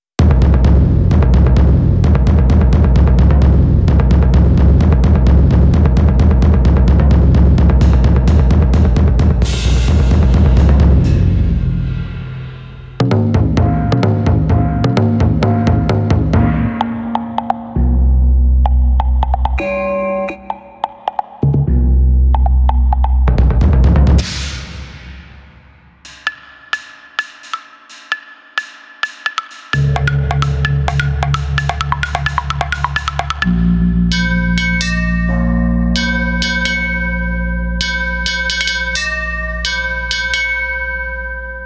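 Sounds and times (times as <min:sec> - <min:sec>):
Chinese percussion: 0:00.2 - 0:41.6
gong: 0:09.4 - 0:18.2, 0:29.8 - 0:41.6.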